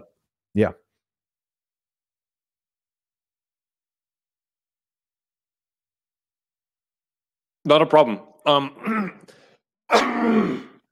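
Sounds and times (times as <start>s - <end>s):
speech: 0.5s - 0.8s, 7.7s - 10.7s
cough: 8.8s - 9.3s, 9.9s - 10.9s.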